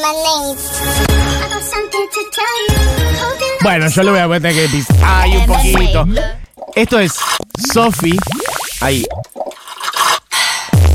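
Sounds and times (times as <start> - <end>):
speech: 0.0 - 9.3
soda slurped through a straw: 6.5 - 10.8.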